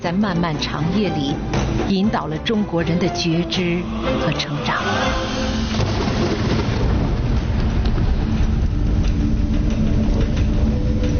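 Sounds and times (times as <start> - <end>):
speech: 0.0 - 5.6
thunder rumbling from a lightning strike: 1.3 - 11.1
rain hissing: 3.4 - 10.2.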